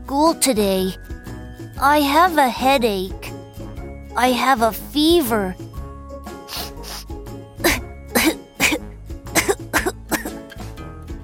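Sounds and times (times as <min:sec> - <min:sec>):
speech: 0:00.1 - 0:01.2, 0:01.8 - 0:03.3, 0:04.2 - 0:05.6
person coughing: 0:07.6 - 0:10.4
throat clearing: 0:07.6 - 0:10.4.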